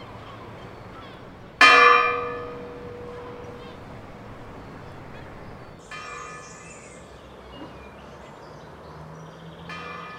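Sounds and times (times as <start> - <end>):
church bell strike: 0.0 - 7.0, 9.7 - 10.1.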